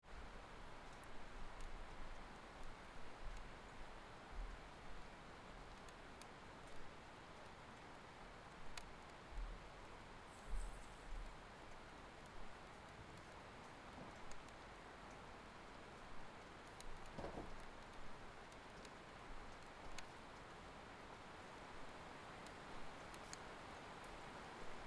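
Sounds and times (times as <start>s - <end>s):
rain heard out of a window: 0.1s - 24.8s.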